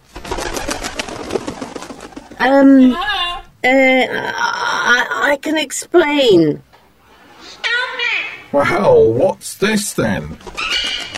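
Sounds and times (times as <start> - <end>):
speech: 2.4 - 3.1, 3.6 - 6.7, 8.5 - 10.8
parrot squawking: 10.4 - 11.1.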